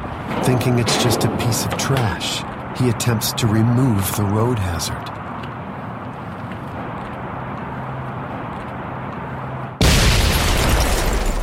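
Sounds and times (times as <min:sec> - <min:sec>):
speech: 0:00.5 - 0:05.2
bomb explosion: 0:09.8 - 0:11.4.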